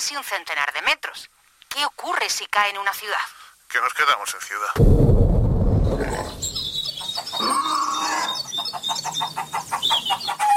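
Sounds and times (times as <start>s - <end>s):
speech: 0.1s - 5.3s
scattered higher chirps: 6.0s - 7.5s
longer drawn-out hen call: 7.5s - 10.5s.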